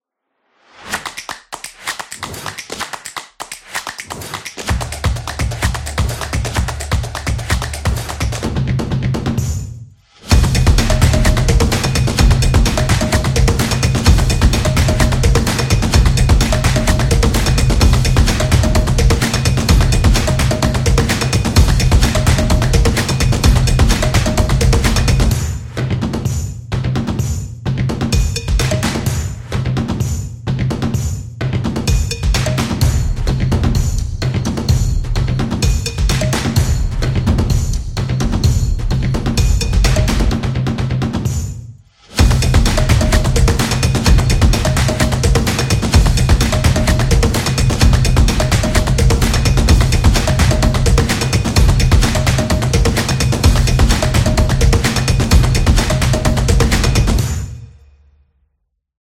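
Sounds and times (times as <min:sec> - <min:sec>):
hands clapping: 0:00.9 - 0:08.5, 0:10.8 - 0:25.3, 0:32.4 - 0:32.8, 0:36.1 - 0:36.6, 0:42.6 - 0:57.2
drums: 0:03.9 - 0:57.6.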